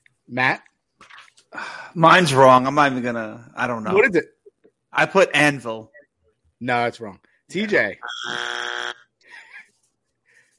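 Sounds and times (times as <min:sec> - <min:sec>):
speech: 0:00.3 - 0:00.7, 0:01.9 - 0:05.9, 0:06.6 - 0:08.7
game show buzzer: 0:08.0 - 0:09.0.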